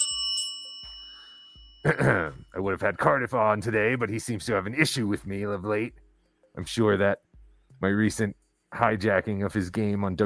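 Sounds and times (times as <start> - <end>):
bell ringing with a sustained metallic tone: 0.0 - 2.6
speech: 1.8 - 6.0, 6.6 - 10.2.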